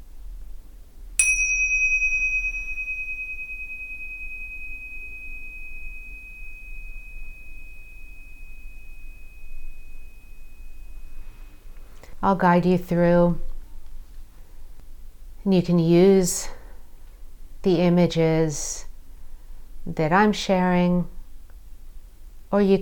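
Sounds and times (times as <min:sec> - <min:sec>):
low hum: 0:00.0 - 0:22.8
meditation bell struck once: 0:01.2 - 0:11.6
speech: 0:12.2 - 0:13.5, 0:15.4 - 0:16.6, 0:17.6 - 0:18.9, 0:19.9 - 0:21.2, 0:22.5 - 0:22.8.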